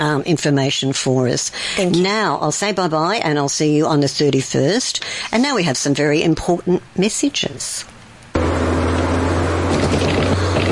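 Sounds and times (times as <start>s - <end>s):
speech: 0.0s - 7.9s
car driving along a road at night: 8.4s - 10.6s.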